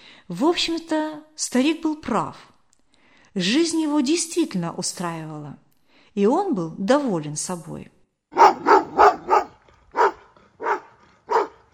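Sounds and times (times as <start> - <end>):
speech: 0.3 - 2.5, 3.4 - 8.5
dog barking hoarsely in a yard: 8.3 - 11.7.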